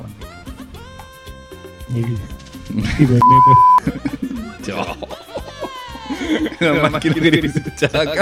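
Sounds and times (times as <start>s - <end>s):
speech: 1.9s - 5.3s, 6.2s - 8.2s
several people laughing: 2.7s - 8.2s
censor bleep covering a swear word: 3.2s - 3.8s.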